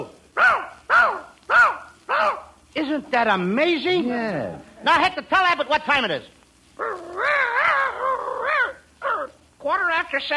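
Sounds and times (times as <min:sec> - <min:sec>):
person imitating a dog yowling and barking: 0:00.4 - 0:02.5, 0:06.8 - 0:09.4
speech: 0:02.8 - 0:07.3, 0:09.6 - 0:10.3.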